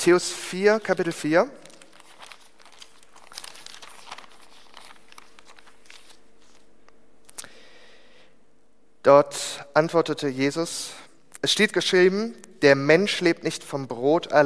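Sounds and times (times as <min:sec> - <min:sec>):
speech: 0:00.0 - 0:01.6, 0:09.0 - 0:14.4
thin Bible pages rustling as it is opened and leafed through: 0:00.8 - 0:06.8.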